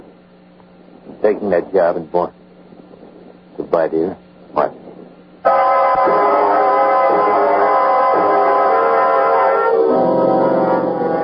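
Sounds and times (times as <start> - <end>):
low rhythmic rumble of a running train: 0.9 - 11.2
speech: 1.2 - 2.4, 3.7 - 4.8
train horn blasting: 5.5 - 11.2.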